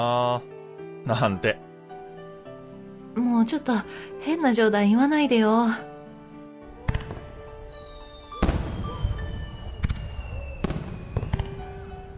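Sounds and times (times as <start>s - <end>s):
speech: 0.0s - 1.7s, 3.2s - 5.9s
fireworks bursts booming: 6.7s - 12.1s
high whistling tone: 6.8s - 12.1s.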